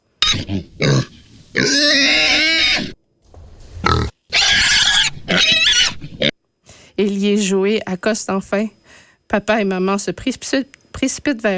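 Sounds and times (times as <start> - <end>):
pig squealing: 0.2 - 3.0, 3.8 - 6.3
speech: 0.4 - 1.1, 8.0 - 11.5.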